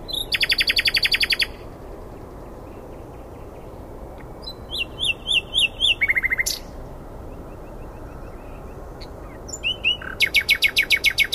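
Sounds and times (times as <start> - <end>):
common nightingale Luscinia megarhynchos singing: 0.0 - 11.3.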